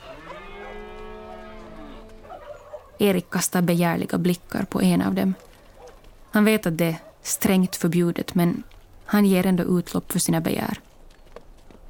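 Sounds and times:
cow mooing: 0:00.0 - 0:02.6
faint barnyard noise: 0:00.0 - 0:11.8
speech: 0:03.0 - 0:05.5, 0:06.4 - 0:10.9.

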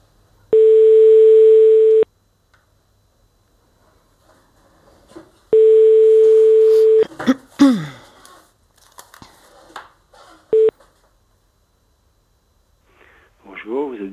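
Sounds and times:
telephone ringing tone of a call placed to Paris: 0:00.5 - 0:02.1, 0:05.5 - 0:07.0, 0:10.5 - 0:10.7.

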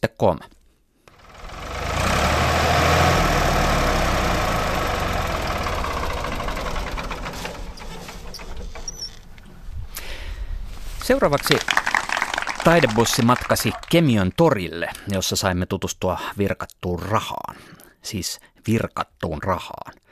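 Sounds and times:
speech: 0:00.1 - 0:00.6, 0:11.1 - 0:11.9, 0:12.6 - 0:20.1
five Ford tractor engines idling together: 0:01.1 - 0:09.8, 0:11.1 - 0:13.9.

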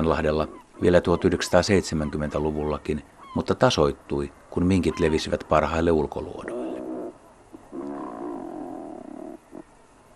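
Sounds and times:
speech: 0:00.0 - 0:06.6
razorbill producing low rasping growls: 0:06.4 - 0:09.7.

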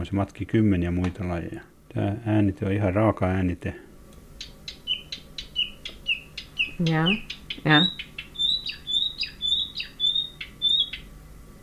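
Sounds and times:
speech: 0:00.0 - 0:03.9, 0:06.8 - 0:08.1
quiet low hum: 0:00.0 - 0:11.6
marsh warbler singing: 0:04.4 - 0:11.1.

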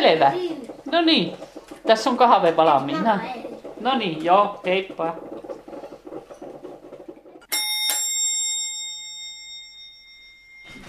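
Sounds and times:
speech: 0:00.1 - 0:05.3
doorbell chiming two tones: 0:07.5 - 0:10.8.

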